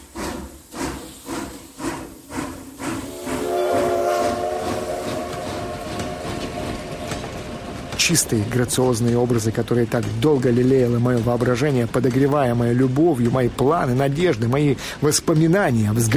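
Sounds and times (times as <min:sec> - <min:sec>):
train wheels clickety-clacking over rail joints: 0:00.0 - 0:16.1
sustained train horn: 0:03.0 - 0:08.1
speech: 0:08.1 - 0:16.1.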